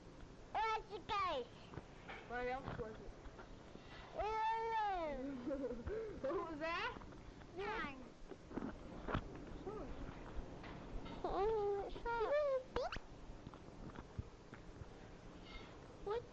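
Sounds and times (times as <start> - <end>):
faint hum: 0.0 - 16.3
speech: 0.8 - 3.2, 4.2 - 8.0, 11.2 - 12.6
cat chirping softly: 11.2 - 13.1.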